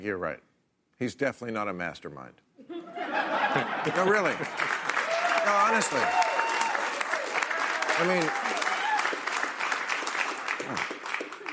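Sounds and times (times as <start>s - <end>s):
speech: 0.0s - 2.4s, 3.1s - 4.8s, 5.5s - 6.3s, 8.0s - 8.6s, 10.7s - 10.9s
laughter: 2.6s - 6.1s
studio audience applauding: 3.6s - 11.5s.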